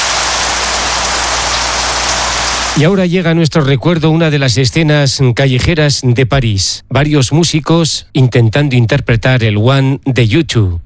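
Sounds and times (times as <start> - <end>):
steady rain in a sudden downpour: 0.0 - 2.8
speech: 2.8 - 10.8.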